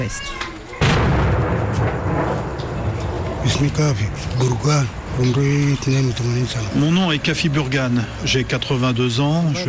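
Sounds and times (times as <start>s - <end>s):
speech: 0.0s - 0.4s, 3.4s - 9.6s
artillery bombardment and cannon fire in Oumbada on the western outskirts of Khartoum: 0.8s - 5.3s
heavy blast: 0.8s - 5.8s.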